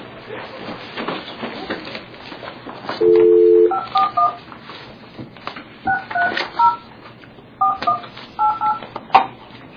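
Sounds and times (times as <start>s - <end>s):
telephone dial tone: 3.0s - 4.4s
telephone keypad tones: 3.0s - 4.4s, 7.6s - 8.8s.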